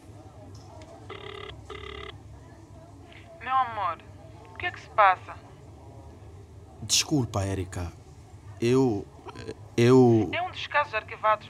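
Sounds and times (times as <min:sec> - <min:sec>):
low steady hum: 0:00.0 - 0:11.4
electronic ringback tones of a mobile phone call: 0:01.1 - 0:02.1
speech: 0:03.5 - 0:05.5, 0:06.9 - 0:08.0, 0:08.6 - 0:11.4.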